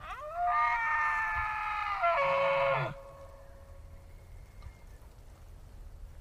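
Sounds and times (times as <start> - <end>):
elk bellowing in forest: 0.0 - 3.7.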